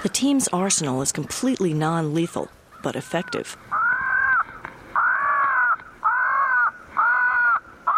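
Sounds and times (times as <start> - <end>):
speech: 0.0 - 3.7
tape recording of a crow distress call broadcast among tall pines and oaks: 2.8 - 7.9
harsh drawn-out crow caws: 3.7 - 7.9.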